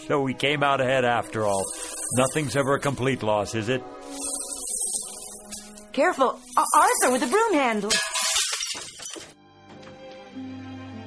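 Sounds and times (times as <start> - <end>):
speech: 0.1 - 4.2, 6.0 - 8.1
glass shattering: 1.4 - 2.9, 4.0 - 9.4.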